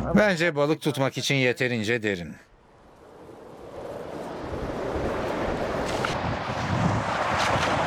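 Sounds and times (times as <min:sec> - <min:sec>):
speech: 0:00.1 - 0:02.5
wind blowing across open water: 0:02.5 - 0:07.8
wash of waves: 0:02.6 - 0:07.8.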